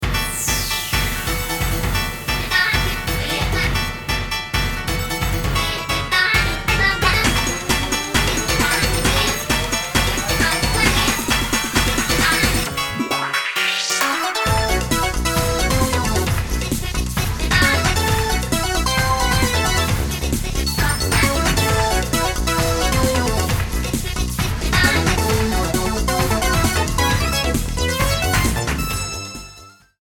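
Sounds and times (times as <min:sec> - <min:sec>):
additional synths: 0:00.0 - 0:29.8
percussion: 0:00.3 - 0:29.9.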